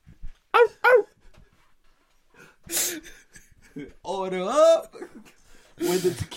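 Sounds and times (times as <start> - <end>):
dog barking: 0.6 - 1.1
speech: 3.8 - 5.0, 5.9 - 6.3.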